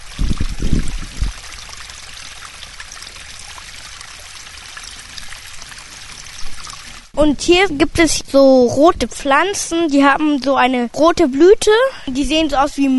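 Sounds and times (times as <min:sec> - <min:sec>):
small brook flowing: 0:00.0 - 0:07.2
speech: 0:07.2 - 0:12.9.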